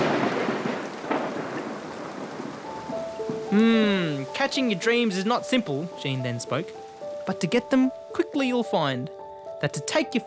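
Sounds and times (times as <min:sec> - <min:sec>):
low thunder rumbling outside a cave at night: 0:00.0 - 0:06.4
heavy rain outside a cave at night: 0:00.0 - 0:10.2
speech: 0:03.5 - 0:10.2.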